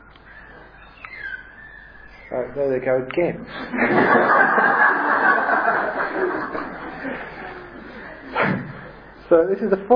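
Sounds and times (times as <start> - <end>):
birds calling outside: 0.0 - 2.9
hiss: 0.0 - 9.9
speech: 2.3 - 7.4, 9.3 - 9.9
laughter: 3.5 - 8.4.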